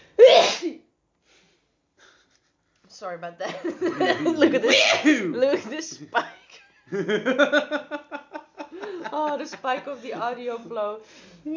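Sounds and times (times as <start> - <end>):
person sneezing: 0.2 - 0.8, 4.6 - 5.3
speech: 3.0 - 8.1, 9.1 - 11.5
laughter: 3.5 - 10.9.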